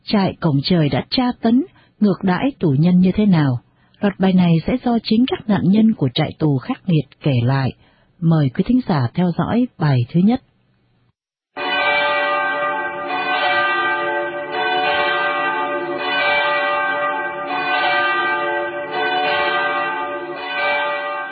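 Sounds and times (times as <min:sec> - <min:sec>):
speech: 0:00.1 - 0:10.5
large bell of a cathedral ringing urgently: 0:11.6 - 0:21.3.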